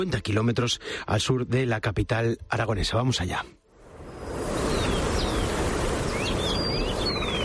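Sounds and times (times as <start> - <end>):
speech: 0.0 - 3.6
wind rushing: 3.7 - 7.4
birds chirping outdoors: 4.0 - 7.4.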